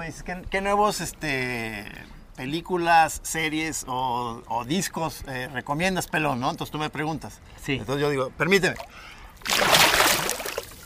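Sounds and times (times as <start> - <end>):
speech: 0.0 - 10.0
water sloshing and splashing as someone gets out of water: 8.6 - 10.8.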